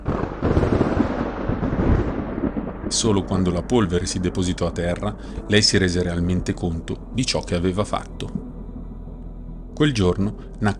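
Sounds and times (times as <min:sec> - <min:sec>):
loud booming thunder crash sound effect: 0:00.0 - 0:06.5
speech: 0:02.9 - 0:08.4, 0:09.8 - 0:10.7.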